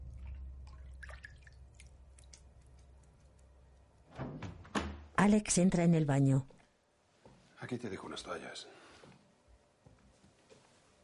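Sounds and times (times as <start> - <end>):
water dripping: 0.0 - 4.0
speech: 5.2 - 6.6, 7.7 - 8.9.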